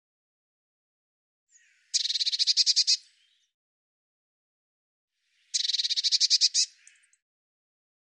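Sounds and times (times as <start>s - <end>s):
Eurasian blue tit calling with harsh buzzy churring: 1.9s - 3.0s, 5.5s - 7.0s.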